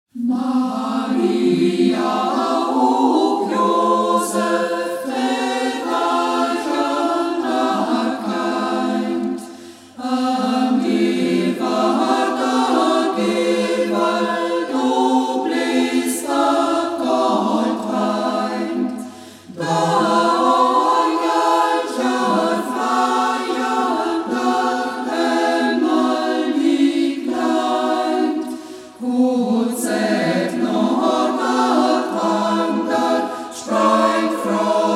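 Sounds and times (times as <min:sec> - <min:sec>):
choir singing in Reußmarkt local dialect: 0:00.1 - 0:34.9.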